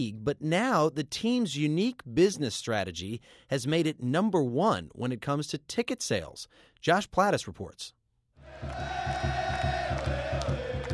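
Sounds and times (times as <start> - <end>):
speech: 0.0 - 8.0, 8.6 - 9.4
huge stadium crowd roaring at a soccer match: 8.4 - 10.9
steady rhythmic thumps like drumming or chanting: 8.4 - 10.9.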